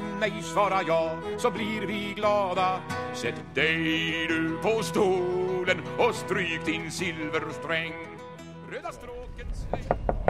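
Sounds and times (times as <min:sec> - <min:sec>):
speech: 0:00.2 - 0:10.0
knocking on the door of an old restaurant: 0:09.7 - 0:10.2.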